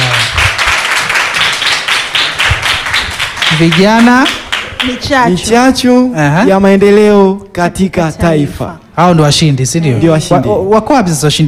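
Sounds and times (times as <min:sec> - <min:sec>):
audience applause at a youth prize-winner announcement: 0:00.0 - 0:05.0
speech: 0:03.6 - 0:11.4.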